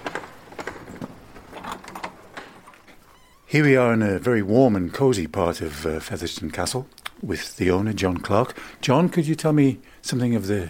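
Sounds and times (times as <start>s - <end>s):
heavy iron door handle turning at Featherstone Castle: 0.0s - 3.5s
speech: 3.5s - 10.6s.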